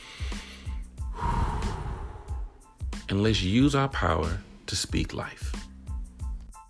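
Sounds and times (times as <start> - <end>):
deep breath drawn in: 0.0 - 2.7
speech: 3.1 - 5.6.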